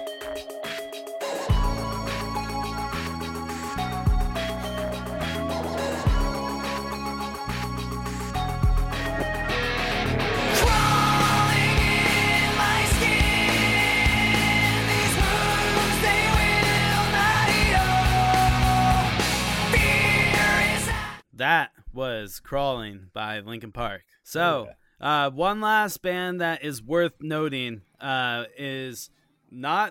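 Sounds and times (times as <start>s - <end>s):
heavy nu metal song with distorted guitars and drums: 1.3s - 21.2s
speech: 22.5s - 29.8s.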